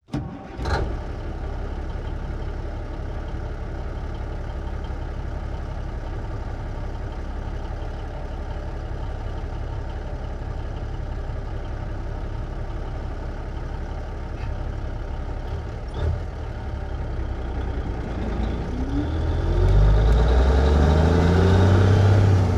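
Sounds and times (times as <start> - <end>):
1954 International big rig truck engine starting and idling: 0.0 - 22.5
1954 International big rig truck driving away: 14.2 - 22.5.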